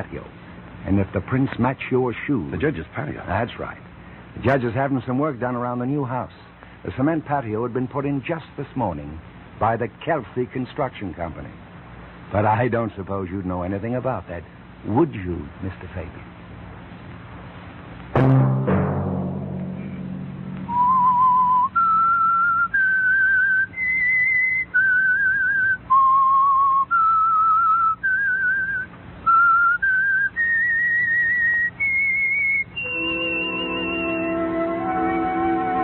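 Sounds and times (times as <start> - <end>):
speech: 0.0 - 11.6, 12.3 - 16.3
low sustained tone: 18.2 - 22.5
whistled theme tune: 20.6 - 35.8.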